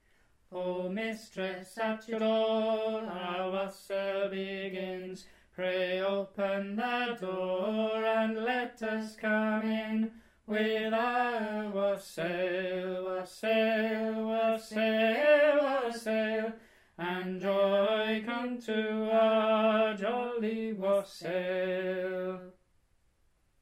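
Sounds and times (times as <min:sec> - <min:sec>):
tenor voice singing a wassail: 0:00.5 - 0:22.5.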